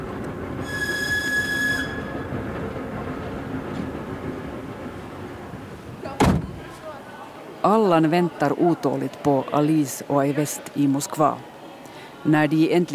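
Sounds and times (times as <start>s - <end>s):
train rolling along rails with continuous low rumble: 0.0s - 7.6s
high metallic train wheel squeal: 0.6s - 2.4s
speech: 7.7s - 11.5s, 12.2s - 12.9s.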